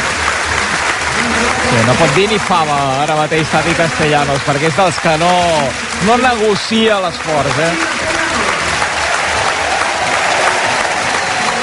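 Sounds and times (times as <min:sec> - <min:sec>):
stadium crowd applauding a football player leaving the pitch: 0:00.0 - 0:11.6
speech: 0:01.7 - 0:07.9.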